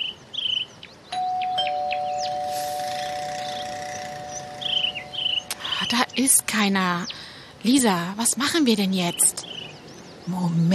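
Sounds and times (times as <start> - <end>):
birds chirping outdoors: 0.0 - 10.7
doorbell ringing with two sustained tones: 1.2 - 5.5
speech: 5.9 - 9.5, 10.3 - 10.7.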